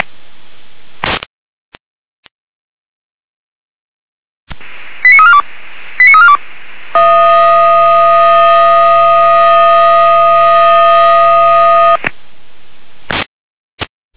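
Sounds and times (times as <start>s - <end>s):
loud steady buzzing alert tone over a radio channel: 4.6s - 12.0s
volunteer fire brigade alerting tones over radio in Weimarer Land Germany: 6.0s - 6.4s, 7.0s - 12.0s.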